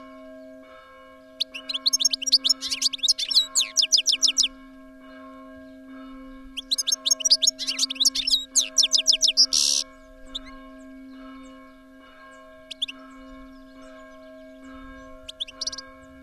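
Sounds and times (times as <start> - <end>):
European goldfinch twittering: 1.4 - 4.5, 6.6 - 10.6, 12.7 - 14.2, 15.0 - 15.9.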